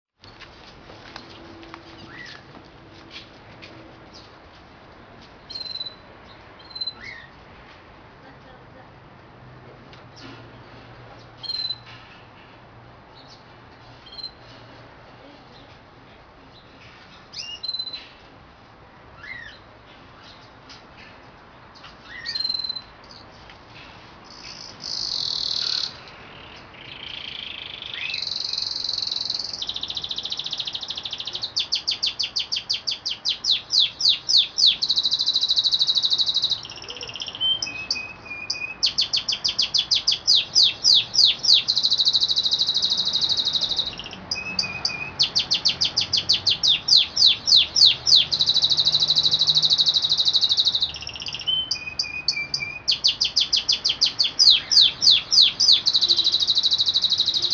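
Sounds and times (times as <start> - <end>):
canary singing: 1.2 - 2.5, 5.4 - 7.4, 11.2 - 11.9, 13.2 - 14.5, 16.5 - 18.2, 19.1 - 20.5, 22.0 - 23.3, 24.2 - 57.5.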